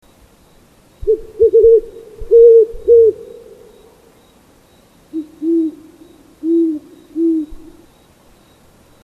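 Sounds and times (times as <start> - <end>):
Great Horned Owl: 1.0 - 4.1, 5.1 - 7.9.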